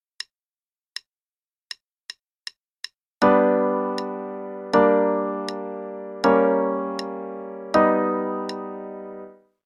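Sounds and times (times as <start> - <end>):
chords on G: 3.2 - 9.5.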